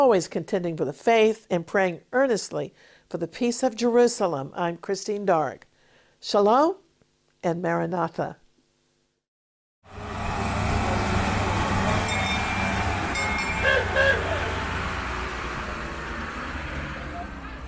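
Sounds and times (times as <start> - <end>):
speech: 0.0 - 6.8, 7.4 - 8.4
small tourist train engine and rolling noise: 9.9 - 17.6.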